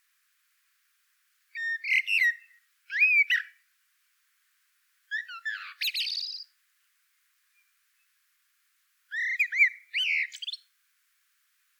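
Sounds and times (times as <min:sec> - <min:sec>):
common blackbird Turdus merula singing: 0:01.6 - 0:03.6, 0:05.1 - 0:06.5, 0:09.1 - 0:10.6.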